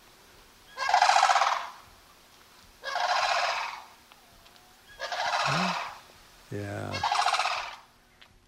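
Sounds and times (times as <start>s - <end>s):
sandhill crane bugling calls: 0.7s - 1.8s, 2.8s - 3.9s, 4.9s - 7.9s
speech: 6.5s - 7.2s.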